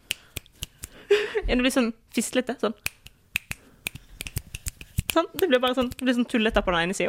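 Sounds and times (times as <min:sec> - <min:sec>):
weak left-handed finger snapping: 0:00.0 - 0:01.0, 0:02.8 - 0:06.0
speech: 0:01.5 - 0:03.0, 0:05.2 - 0:07.0.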